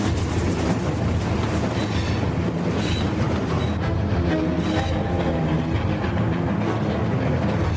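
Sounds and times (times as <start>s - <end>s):
railway train carrying excavated rock clattering along tracks: 0.0s - 7.7s
faint metallic squeals from railway train: 2.8s - 5.2s.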